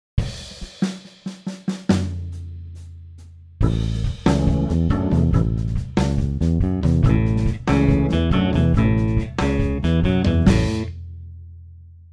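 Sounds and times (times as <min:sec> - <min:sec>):
blues rumba guitar: 0:03.6 - 0:10.9.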